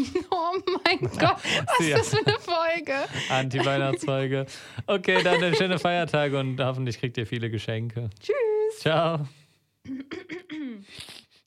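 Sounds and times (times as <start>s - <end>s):
laughter: 0.0s - 6.5s
speech: 0.0s - 11.2s
person clearing throat: 9.9s - 10.8s.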